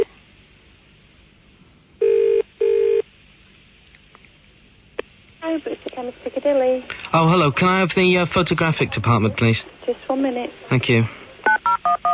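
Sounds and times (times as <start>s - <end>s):
telephone ringing tone: 2.0s - 3.0s
speech: 5.5s - 11.2s.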